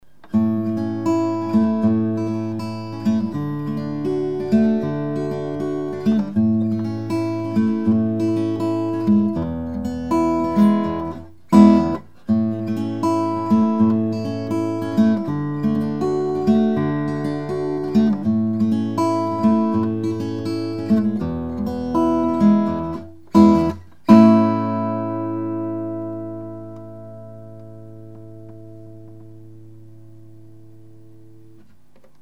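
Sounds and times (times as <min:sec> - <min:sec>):
guitar playing: 0:00.0 - 0:31.8.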